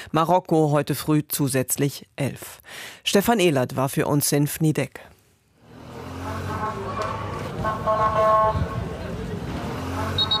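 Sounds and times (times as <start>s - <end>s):
speech: 0.1s - 5.1s
traffic noise: 5.5s - 10.3s
ambulance siren tones: 10.0s - 10.3s
police whistle: 10.2s - 10.3s.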